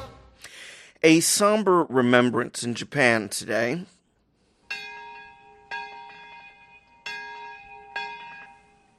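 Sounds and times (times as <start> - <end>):
speech: 1.0 - 3.9
traditional Japanese bells ringing: 4.6 - 8.9.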